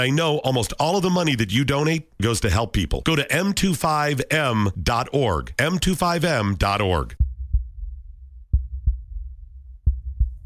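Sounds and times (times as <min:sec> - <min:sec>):
speech: 0:00.0 - 0:07.2
heartbeat double beats: 0:07.1 - 0:10.4
faint low rumble: 0:07.2 - 0:10.4.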